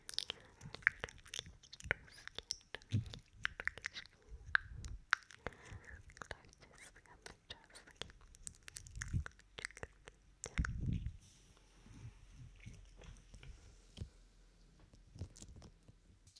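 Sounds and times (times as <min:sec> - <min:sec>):
wet mouth sounds with sticky clicks and smacks: 0:00.0 - 0:11.2
heavier lower moist mouth sounds: 0:00.0 - 0:14.1
soft wet squelching: 0:00.0 - 0:14.2.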